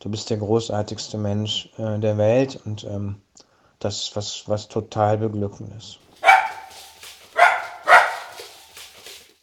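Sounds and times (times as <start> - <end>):
speech: 0.0 - 3.2, 3.8 - 6.0
dog barking: 6.2 - 8.9.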